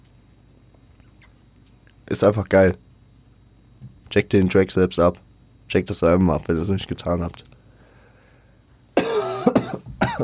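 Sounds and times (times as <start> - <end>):
speech: 2.1 - 2.8, 4.1 - 7.6
harsh raspy coughs: 9.0 - 10.2.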